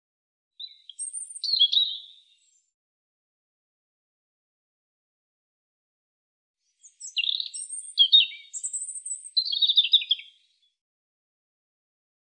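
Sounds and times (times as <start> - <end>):
European robin singing: 0.6 - 2.7, 6.7 - 10.8.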